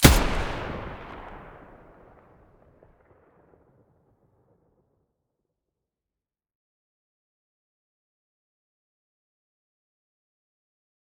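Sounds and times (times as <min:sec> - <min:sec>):
MDR weapon muzzle blast: 0:00.0 - 0:02.0.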